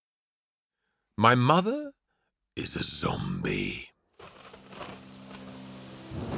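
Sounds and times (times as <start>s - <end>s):
speech: 1.2s - 2.0s, 2.6s - 3.9s
heavy rain: 4.2s - 6.3s
deep roll of thunder: 4.6s - 6.3s.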